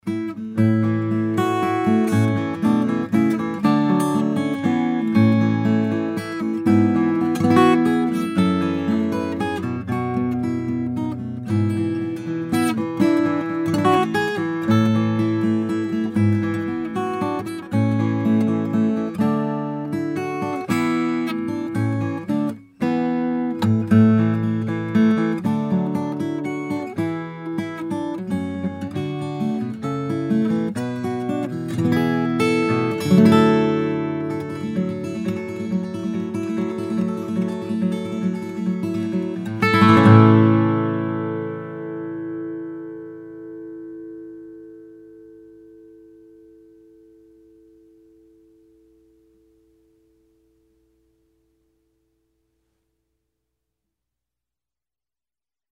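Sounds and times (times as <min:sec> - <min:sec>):
guitar played for a mic test: 0:00.0 - 0:53.0.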